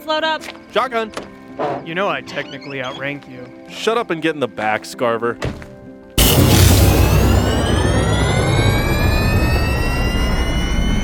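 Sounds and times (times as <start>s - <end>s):
speech: 0.0s - 5.6s
aircraft engine starting up before takeoff: 6.2s - 11.0s
aircraft turbine whining as it spools up: 6.2s - 11.0s.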